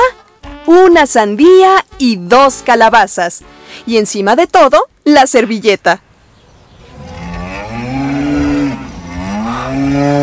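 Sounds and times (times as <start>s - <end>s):
speech: 0.7s - 6.0s
cow mooing: 6.8s - 10.2s.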